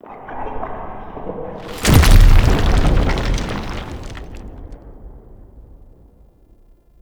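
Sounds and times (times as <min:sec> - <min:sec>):
rock fall: 0:01.6 - 0:06.6.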